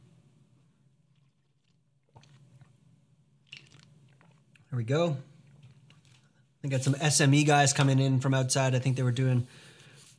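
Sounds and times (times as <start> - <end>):
wet slurping sips of tea: 1.1 - 2.8, 3.4 - 4.7
speech: 4.7 - 5.3, 6.6 - 10.1.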